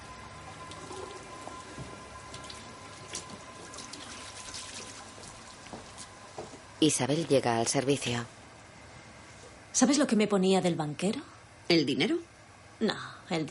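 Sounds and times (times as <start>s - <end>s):
water running from a tap at a restroom sink: 0.5s - 5.9s
someone washing their hands at a restroom sink: 2.3s - 6.0s
speech: 6.8s - 8.4s, 9.8s - 13.5s.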